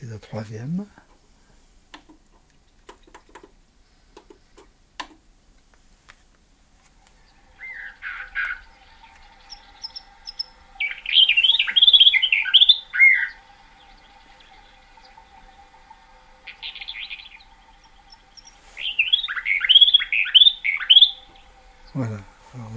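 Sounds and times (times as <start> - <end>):
faint steady ticking: 0.0 - 22.7
speech: 0.2 - 1.0
birds trading warbling song phrases: 7.1 - 22.7.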